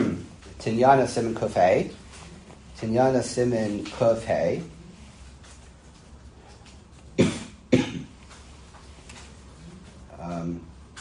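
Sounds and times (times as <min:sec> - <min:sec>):
speech: 0:00.6 - 0:02.0, 0:02.8 - 0:04.8
person coughing: 0:07.2 - 0:08.2.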